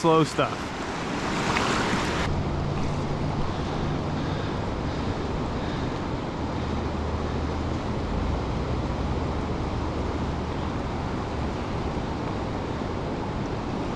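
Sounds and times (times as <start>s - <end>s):
speech: 0.0s - 0.7s
fast-flowing river water rushing: 0.0s - 13.9s.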